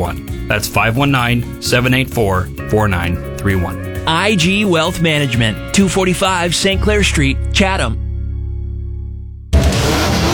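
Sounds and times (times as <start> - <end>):
speech: 0.0 - 8.0
winged sprint car engine at a speedway race night: 9.5 - 10.3.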